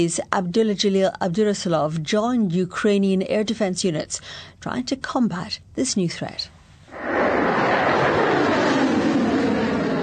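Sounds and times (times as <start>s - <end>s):
speech: 0.0s - 7.2s
missile launching into the sky: 6.9s - 10.0s.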